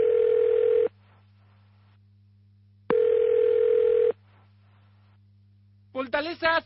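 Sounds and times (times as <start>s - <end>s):
telephone ringing: 0.0s - 0.9s, 2.9s - 4.2s
low continuous hum: 0.0s - 6.6s
speech: 6.1s - 6.6s.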